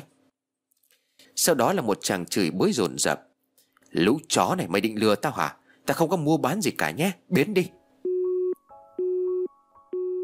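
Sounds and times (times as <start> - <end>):
speech: 1.4 - 3.3, 3.9 - 7.8
phone busy tone after a call is hung up: 8.0 - 10.2.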